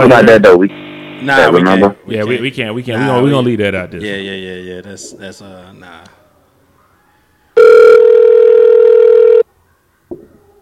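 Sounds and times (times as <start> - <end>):
speech: 0.0 - 6.2
electronic ringing tone of an outgoing phone call: 7.6 - 9.5.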